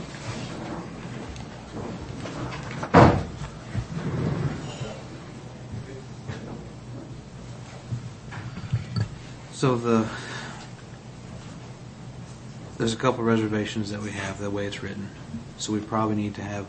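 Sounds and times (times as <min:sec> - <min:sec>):
door shutting with a sharp thud: 0:00.0 - 0:04.9
murmur of room noise: 0:00.0 - 0:16.6
speech: 0:09.6 - 0:10.3, 0:12.8 - 0:16.6.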